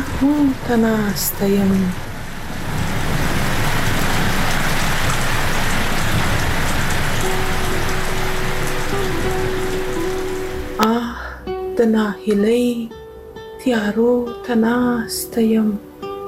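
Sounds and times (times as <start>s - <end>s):
steady rain: 0.0s - 11.2s
speech: 0.2s - 2.0s, 11.8s - 13.0s, 13.6s - 15.9s.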